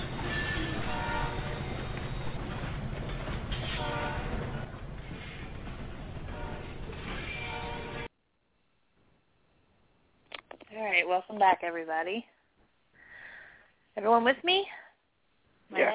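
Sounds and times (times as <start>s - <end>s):
harsh screeching metallic tones: 0.0s - 2.2s, 7.0s - 8.1s
train rumbling and grinding along the tracks: 0.0s - 8.1s
speech: 10.9s - 12.4s, 14.0s - 14.8s, 15.7s - 15.9s.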